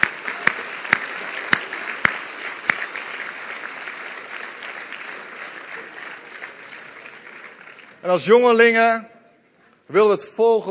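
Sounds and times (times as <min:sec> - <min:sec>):
sharp loud claps: 0:00.0 - 0:08.0
audience applause in a church: 0:00.0 - 0:08.3
speech: 0:08.0 - 0:09.1, 0:09.9 - 0:10.6.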